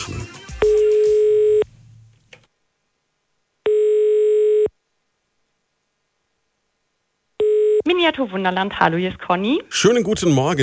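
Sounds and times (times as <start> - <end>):
telephone ringback tone beeps while phoning a business: 0.6 - 1.6, 3.7 - 4.7, 7.4 - 7.9
speech: 8.2 - 10.6.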